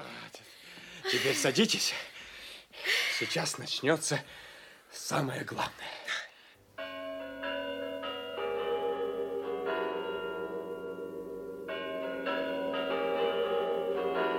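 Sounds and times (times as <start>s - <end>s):
speech: 1.1s - 2.1s, 3.2s - 6.1s
tower clock in Moscow chiming before the New Year: 6.8s - 14.3s.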